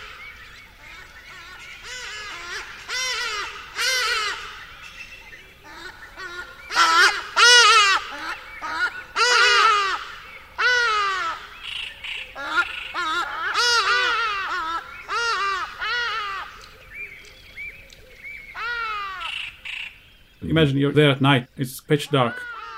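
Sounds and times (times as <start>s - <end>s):
geese honking while flying over a dry riverbed in the bush: 0.0s - 4.8s, 5.5s - 16.8s
ibises calling in harsh nasal honks while flying over a dry riverbed at night: 0.0s - 22.7s
speech: 20.6s - 22.5s.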